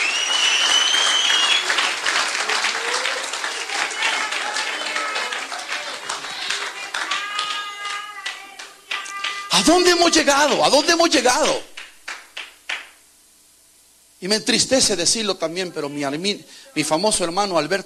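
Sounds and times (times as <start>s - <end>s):
whistles in a crowd: 0.0s - 1.9s
large crowd applauding loudly: 0.0s - 13.0s
scattered voices in a crowd: 2.8s - 10.0s
speech: 9.6s - 11.7s, 14.2s - 17.8s.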